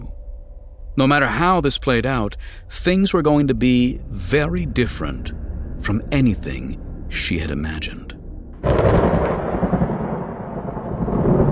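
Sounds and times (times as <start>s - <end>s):
speech: 1.0s - 9.0s
distant thunder rumbling across empty plains: 3.1s - 11.5s.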